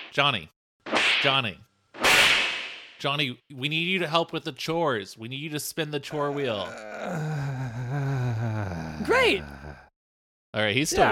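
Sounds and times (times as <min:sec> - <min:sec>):
speech: 0:00.2 - 0:00.6, 0:01.2 - 0:01.7, 0:03.0 - 0:08.1, 0:09.0 - 0:09.6, 0:10.6 - 0:11.1
loud slap sound effects: 0:00.9 - 0:01.4, 0:02.0 - 0:03.0.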